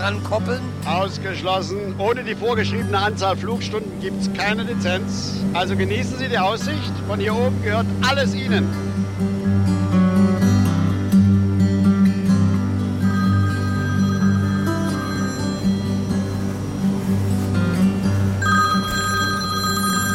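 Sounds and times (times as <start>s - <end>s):
speech: 0.0s - 9.4s
low steady drone: 0.0s - 20.1s
mobile phone ringing inside a small aircraft: 13.0s - 16.8s, 18.4s - 20.1s.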